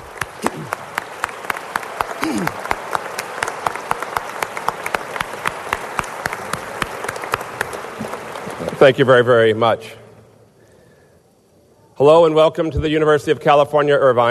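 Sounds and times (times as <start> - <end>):
crowd applauding: 0.0 - 9.6
speech: 2.3 - 2.6, 8.8 - 10.0, 12.0 - 14.2.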